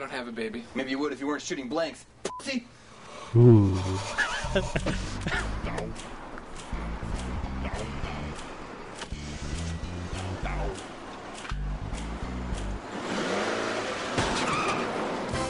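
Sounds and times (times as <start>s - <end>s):
speech: 0.0s - 5.5s
indistinct voices: 3.3s - 4.8s
laughter: 3.4s - 5.6s
used car engine rumbling and revving while driving: 4.5s - 14.2s
car tires skidding and squealing: 12.8s - 15.3s.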